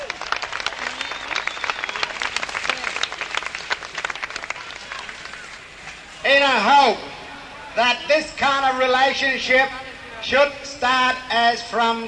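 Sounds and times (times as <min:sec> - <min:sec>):
audience clapping: 0:00.0 - 0:05.6
speech: 0:06.3 - 0:07.1, 0:07.8 - 0:12.0.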